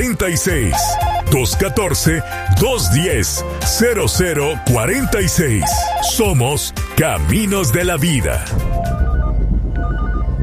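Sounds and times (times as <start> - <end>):
speech: 0.0 - 9.0
low rumble: 8.4 - 10.4
studio telephone ringing with a bright electronic trill: 8.8 - 10.4.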